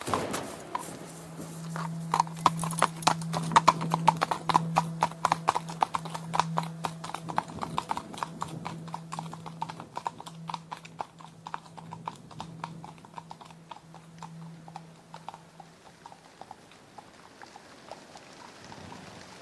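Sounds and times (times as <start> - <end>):
horses' hooves clip-clopping as riders ride home: 0.0 - 19.3.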